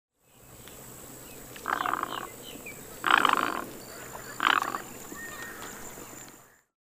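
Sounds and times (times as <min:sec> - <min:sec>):
Great Egret Ardea alba calling: 0:01.6 - 0:02.4, 0:03.0 - 0:05.6.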